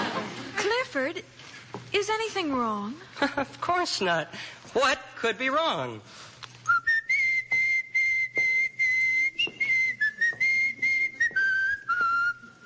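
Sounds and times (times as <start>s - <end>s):
speech: 0.9s - 6.3s
person whistling a bright tune: 6.7s - 12.6s.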